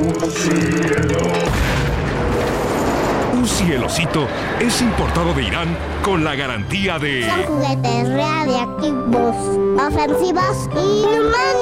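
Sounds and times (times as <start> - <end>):
speech: 0.3 - 1.1, 3.6 - 11.6
nuclear explosion boom: 1.4 - 3.8
crackling debris: 1.5 - 3.8.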